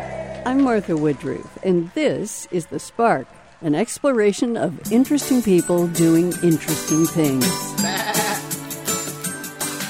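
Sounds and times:
speech: 0:00.4 - 0:08.2
sheep bleating: 0:07.8 - 0:08.5.

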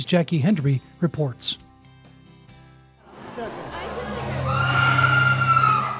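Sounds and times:
speech: 0:00.0 - 0:01.6
murky crowd din: 0:03.0 - 0:05.9
visitors screaming inside a haunted attraction: 0:03.6 - 0:05.9.

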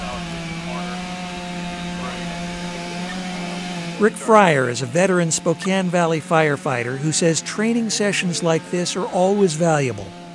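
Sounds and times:
chainsaw running during a fire crew training drill: 0:00.0 - 0:10.3
speech: 0:04.0 - 0:10.2.

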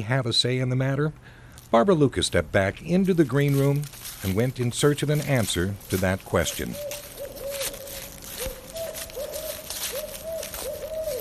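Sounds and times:
speech: 0:00.0 - 0:07.1
steady hiss of outdoor noise: 0:00.0 - 0:11.1
barred owls hooting in woods in western Washtenaw County: 0:06.4 - 0:11.1.

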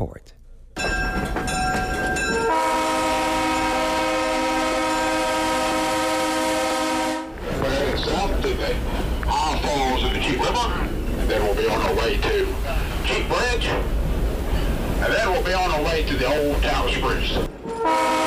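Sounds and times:
train rolling along the rails with rumble and clatter: 0:00.8 - 0:18.2
historic excursion train horn blasting: 0:02.3 - 0:07.4, 0:17.6 - 0:18.2
speech: 0:15.9 - 0:17.5.

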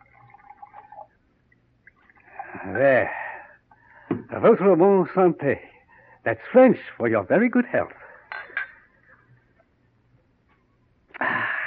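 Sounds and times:
brandy poured from a bottle into brandy snifter glasses: 0:00.0 - 0:03.1
speech: 0:02.6 - 0:03.2, 0:04.4 - 0:08.0.

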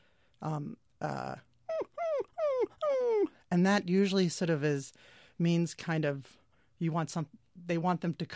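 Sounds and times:
speech: 0:00.4 - 0:01.5, 0:02.6 - 0:08.3
human voice imitating a dog whining: 0:00.5 - 0:03.5.

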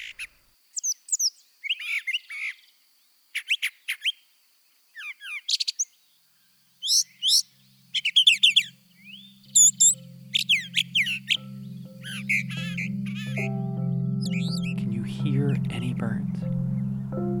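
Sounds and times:
brown thrasher singing: 0:00.0 - 0:17.3.

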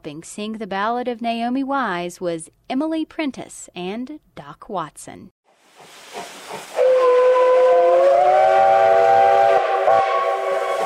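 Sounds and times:
speech: 0:00.0 - 0:05.4
hissing background: 0:05.8 - 0:10.8
loud sustained steam locomotive whistle: 0:06.7 - 0:10.8.

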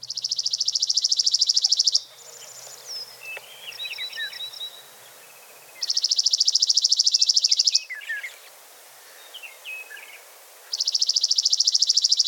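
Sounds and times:
chipping sparrow singing long dry mechanical trills: 0:00.0 - 0:08.5, 0:09.2 - 0:12.2.

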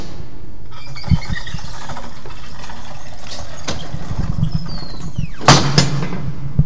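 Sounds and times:
heavy original tunnel door creaking and squealing: 0:00.7 - 0:06.4.

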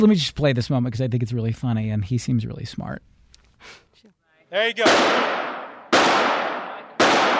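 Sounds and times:
speech: 0:00.0 - 0:05.5
gunshots at a shooting range: 0:04.8 - 0:07.3.

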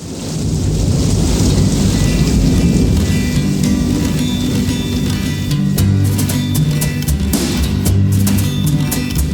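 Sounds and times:
heavy rumbling thunder as a storm effect: 0:00.0 - 0:06.9
heavy rain downpour as a storm effect: 0:00.0 - 0:09.3.

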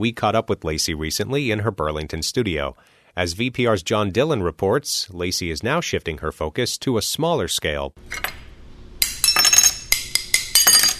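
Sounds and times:
speech: 0:00.0 - 0:08.4
sharp clinks and taps on glass panes being cut: 0:09.0 - 0:10.9.

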